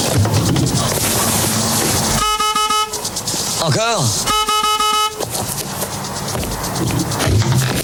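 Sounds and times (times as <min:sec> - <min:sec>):
busy street noise and rumble: 0:00.0 - 0:07.8
car horn blast: 0:02.2 - 0:03.0, 0:04.2 - 0:05.3
speech: 0:03.7 - 0:04.3.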